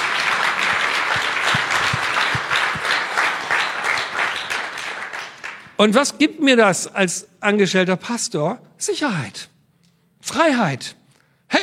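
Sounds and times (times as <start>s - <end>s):
audience applause: 0.0s - 5.8s
speech: 5.8s - 9.5s, 10.2s - 11.6s.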